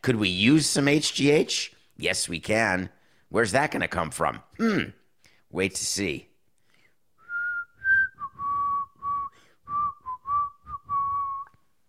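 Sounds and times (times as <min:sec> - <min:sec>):
speech: 0:00.0 - 0:06.3
person whistling a short melody: 0:07.2 - 0:11.7.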